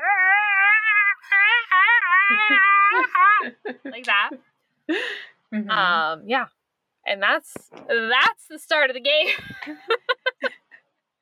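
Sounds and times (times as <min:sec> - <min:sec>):
voice imitating an eerie wavering howl: 0:00.0 - 0:03.6
laughter: 0:00.5 - 0:05.1, 0:09.2 - 0:10.7
speech: 0:02.3 - 0:10.0.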